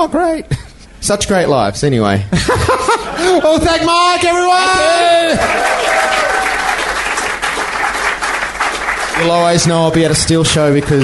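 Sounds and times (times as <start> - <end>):
speech: 0.0 - 6.0, 9.2 - 11.0
laughter: 2.3 - 4.0
dense audience applause: 4.8 - 11.0.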